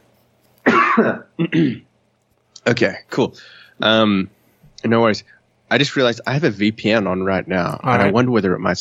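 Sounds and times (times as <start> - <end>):
person coughing: 0.6 - 1.9
speech: 1.0 - 1.9, 2.6 - 8.7.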